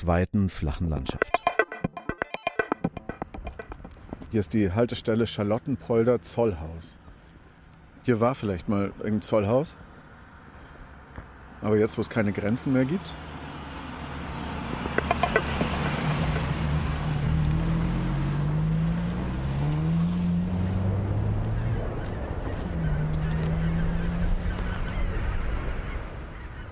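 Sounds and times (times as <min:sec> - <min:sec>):
speech: 0:00.0 - 0:01.5, 0:04.3 - 0:07.0, 0:08.0 - 0:09.8, 0:11.6 - 0:13.3
steady open-air rush on a rural country road: 0:03.2 - 0:26.7
low wavering engine drones passing by on a rural country road: 0:10.1 - 0:26.4.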